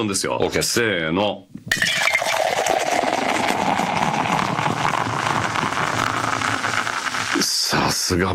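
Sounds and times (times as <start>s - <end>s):
speech: 0.0s - 1.9s, 8.1s - 8.3s
two drinks poured into glasses: 1.7s - 7.6s.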